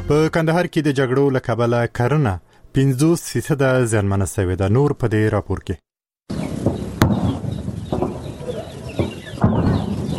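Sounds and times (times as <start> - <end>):
speech: 0.1 - 6.4
birds chirping and whistling among pomegranate and grape orchards in Kandahar: 6.3 - 10.1.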